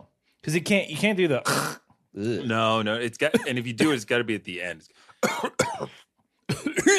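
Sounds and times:
speech: 0:00.4 - 0:06.9
person giving exaggerated theatrical stage coughs: 0:03.3 - 0:04.1, 0:05.2 - 0:06.9.

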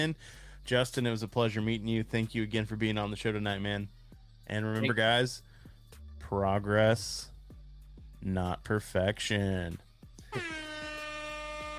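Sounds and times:
speech: 0:00.0 - 0:05.5, 0:06.2 - 0:07.3, 0:08.2 - 0:10.6
air horn blast: 0:10.3 - 0:11.7.

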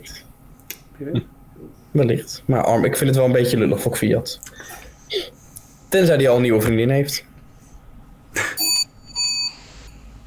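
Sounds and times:
speech: 0:00.0 - 0:00.3, 0:01.0 - 0:07.3
alarm clock ringing: 0:08.6 - 0:09.7.

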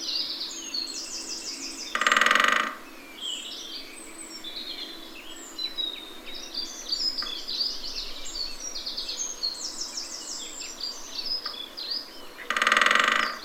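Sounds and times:
chorus of chirping and singing birds: 0:00.0 - 0:13.4
great spotted woodpecker drumming: 0:01.9 - 0:02.8, 0:12.5 - 0:13.4.

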